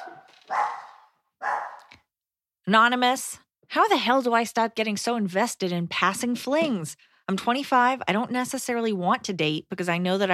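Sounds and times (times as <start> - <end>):
dog barking: 0.0 - 1.9
speech: 2.7 - 10.3.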